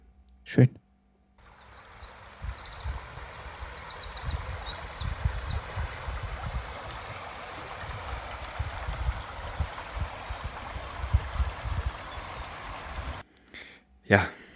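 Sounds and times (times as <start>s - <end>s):
speech: 0.5s - 0.8s, 14.1s - 14.4s
faint bird chirps: 1.4s - 7.2s
babbling brook water gurgling and splashing: 1.4s - 13.2s.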